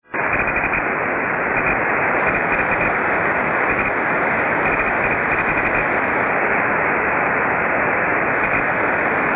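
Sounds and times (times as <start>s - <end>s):
wireless keyboard and mouse interference noise: 0.0s - 9.3s.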